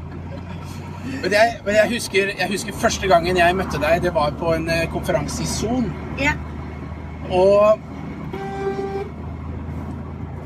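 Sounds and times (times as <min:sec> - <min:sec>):
constant low rumble of engine and road noise: 0:00.0 - 0:10.4
speech: 0:01.0 - 0:06.5, 0:07.3 - 0:07.9
impatient truck horn blaring behind a convertible car: 0:08.3 - 0:09.2.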